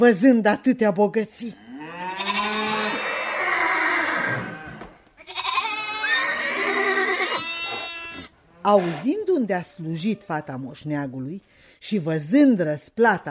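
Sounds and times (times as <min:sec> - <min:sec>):
speech: 0:00.0 - 0:01.6, 0:08.6 - 0:13.3
farm animals calling from a herd of horses, cattle and sheep: 0:01.6 - 0:10.6.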